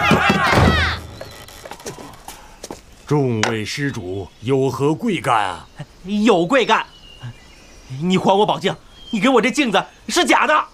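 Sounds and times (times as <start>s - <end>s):
wooden door being smashed in: 0.0s - 1.4s
clattering and creaking debris: 0.0s - 2.0s
speech: 3.1s - 10.7s.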